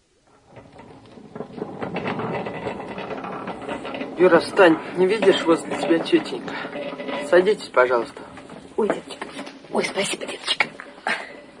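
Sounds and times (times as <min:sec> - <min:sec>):
crowded tram riding on rails: 0:00.0 - 0:11.5
rattling clatter and squeaks: 0:00.0 - 0:11.5
speech: 0:04.2 - 0:09.2, 0:09.8 - 0:10.6.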